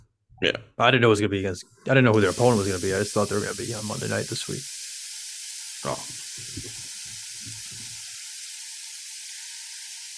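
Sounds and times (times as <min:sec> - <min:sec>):
speech: 0:00.4 - 0:04.8, 0:05.8 - 0:06.8
food frying in a hot pan: 0:02.1 - 0:10.1.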